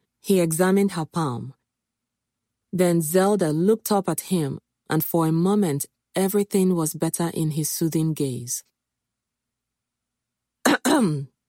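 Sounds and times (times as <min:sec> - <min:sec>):
speech: 0:00.2 - 0:01.6, 0:02.7 - 0:08.7, 0:10.6 - 0:11.3
deep baritone cough: 0:10.7 - 0:11.3.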